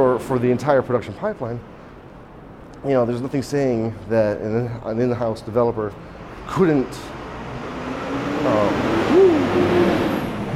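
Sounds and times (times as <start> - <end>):
speech: 0.0 - 1.8, 2.8 - 7.2, 8.4 - 10.0
road traffic rumbling on a busy street: 0.0 - 10.5
vehicle passing: 5.5 - 10.5.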